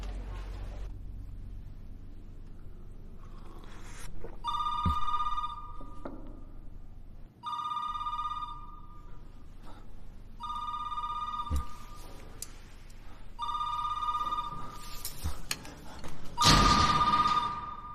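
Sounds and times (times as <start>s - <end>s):
telephone ringing: 4.5s - 6.1s, 7.4s - 9.1s, 10.4s - 12.1s, 13.4s - 15.0s, 16.4s - 17.9s.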